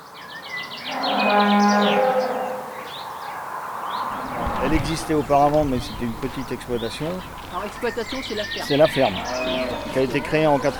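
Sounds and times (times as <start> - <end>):
small birds chirping and tweeting: 0.0 - 10.7
dairy cow mooing on a farm: 0.9 - 2.7, 4.1 - 6.2, 6.9 - 10.7
speech: 4.7 - 10.7.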